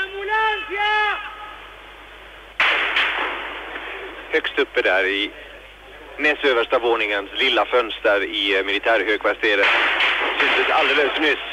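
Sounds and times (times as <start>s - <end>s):
steady noise: 0.0s - 11.5s
speech: 4.4s - 5.5s, 6.2s - 11.5s
gunshots fired at a window of a military headquarters: 9.6s - 11.0s.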